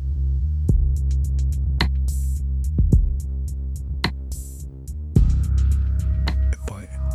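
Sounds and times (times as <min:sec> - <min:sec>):
deep very dark bass line in a music track: 0:00.0 - 0:07.1.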